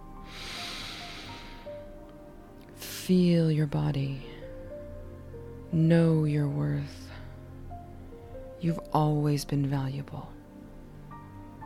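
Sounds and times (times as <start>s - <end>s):
slow deep breath drawn in through the nose or mouth: 0.2s - 2.0s
speech: 3.1s - 4.3s, 5.7s - 7.0s, 8.6s - 10.4s.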